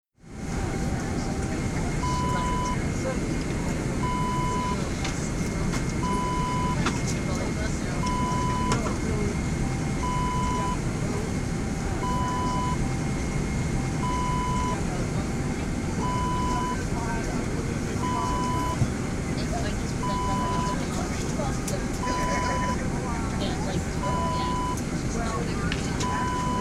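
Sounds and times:
aircraft interior noise: 0.3 - 26.5.

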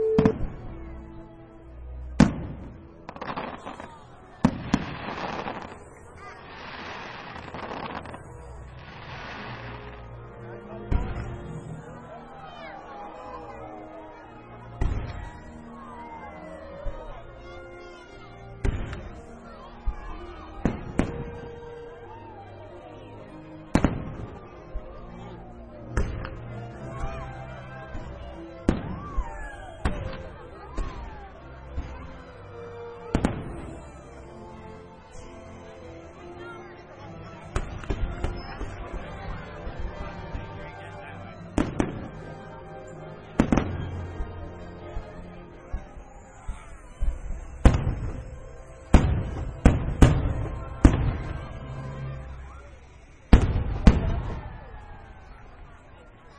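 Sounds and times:
firework display: 0.2 - 0.9, 2.0 - 10.1, 14.8 - 16.1, 16.6 - 23.1, 23.7 - 25.4, 25.9 - 32.2, 33.1 - 34.1, 37.5 - 56.3.

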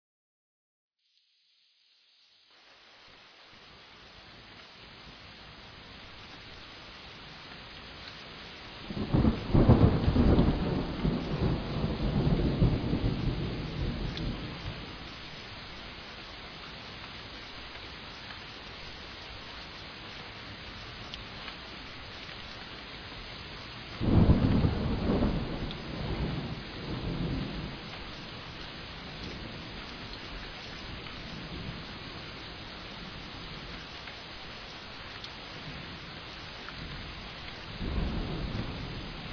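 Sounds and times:
thunderstorm: 8.8 - 16.2, 23.9 - 39.3.

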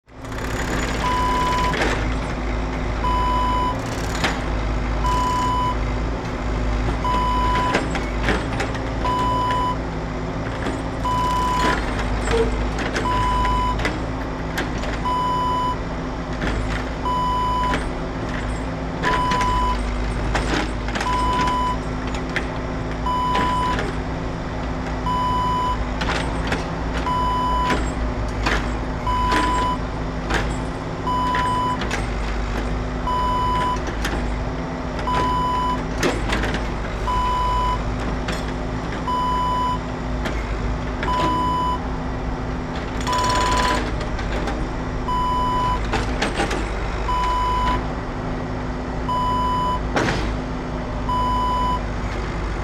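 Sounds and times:
road construction: 0.0 - 52.6.

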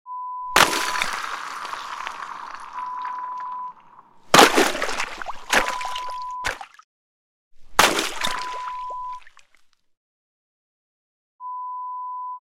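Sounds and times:
ice breaking: 0.6 - 6.7, 7.6 - 9.6.

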